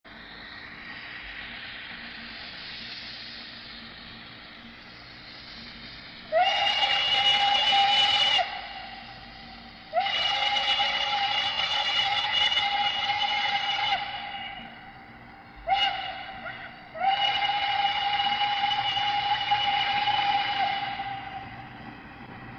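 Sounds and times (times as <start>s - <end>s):
H-9 steam whistle: 6.3s - 21.9s.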